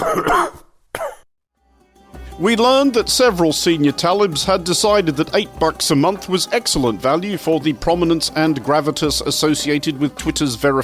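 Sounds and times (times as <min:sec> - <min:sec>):
person coughing deliberately: 0:00.0 - 0:01.3
speech: 0:00.1 - 0:00.6, 0:02.4 - 0:10.8.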